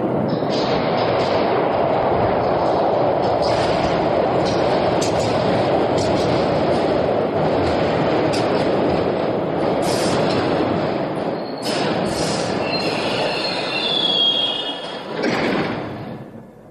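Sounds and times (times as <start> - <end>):
heavy rumble of rolling rail cars: 0.0 - 16.6
train brakes squealing as pads engage: 11.4 - 15.2
shrill metallic screeches: 12.6 - 15.1.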